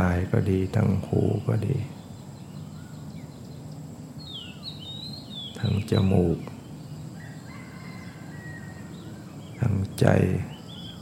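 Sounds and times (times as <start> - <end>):
faint bird calls: 0.0 - 11.0
wind blowing through leaves: 0.0 - 11.0
speech: 0.1 - 2.0, 5.6 - 6.5, 9.6 - 10.5
chicken calls: 7.1 - 9.3.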